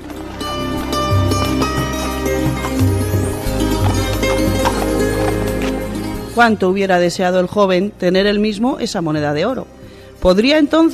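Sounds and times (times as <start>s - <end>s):
clip-clop hoofbeats of a horse as its rider rides away: 0.0s - 6.6s
speech: 6.4s - 10.9s.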